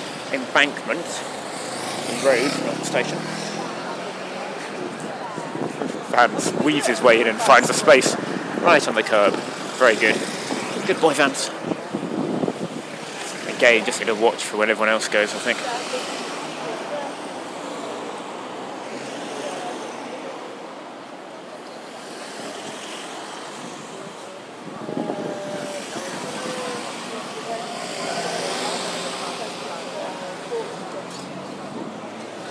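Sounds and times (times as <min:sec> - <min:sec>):
evening road traffic at the entrance to Embankment Road: 0:00.0 - 0:32.4
speech: 0:00.3 - 0:01.4, 0:02.1 - 0:03.5, 0:06.1 - 0:10.3, 0:10.9 - 0:11.7, 0:13.6 - 0:16.1
wind buffeting: 0:04.6 - 0:14.0, 0:24.5 - 0:26.9.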